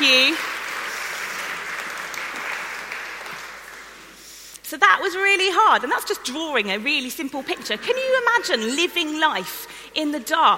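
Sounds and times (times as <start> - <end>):
crowd applauding: 0.0 - 4.2
speech: 4.7 - 10.5.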